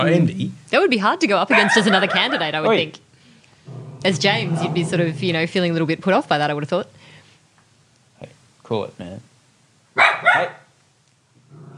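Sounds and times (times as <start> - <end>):
speech: 0.0 - 3.0, 3.7 - 7.0, 8.2 - 9.3, 10.2 - 10.6
dog barking: 1.5 - 2.4, 10.0 - 10.7.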